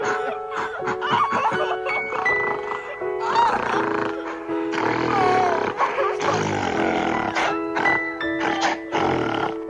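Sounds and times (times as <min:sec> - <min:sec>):
laughter: 0:00.0 - 0:03.9
beastly animal roar with guttural grunting bursts: 0:03.4 - 0:09.6.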